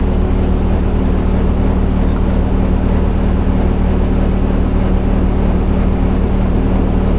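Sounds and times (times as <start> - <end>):
Class 47 diesel locomotive idling: 0.0 - 7.1.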